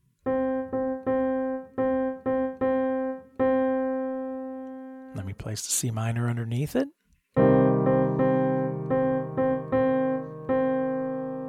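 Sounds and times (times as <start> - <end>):
pitched keyboard tone playing a rhythmic pattern: 0.0 - 5.2, 7.4 - 11.4
speech: 5.4 - 7.0.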